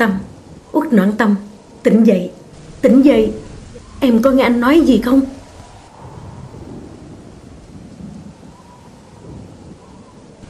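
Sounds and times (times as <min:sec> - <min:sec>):
speech: 0:00.0 - 0:03.4, 0:04.0 - 0:05.3
heavy rain pouring down: 0:00.0 - 0:10.4
low rumbling thunder: 0:02.5 - 0:10.4.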